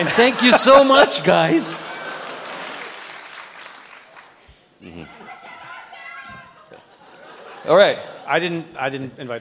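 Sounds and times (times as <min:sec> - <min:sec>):
speech: 0:00.0 - 0:01.8, 0:07.7 - 0:09.3
laughter: 0:00.0 - 0:03.6, 0:04.8 - 0:08.8
audience members shouting in Arabic: 0:05.0 - 0:06.8.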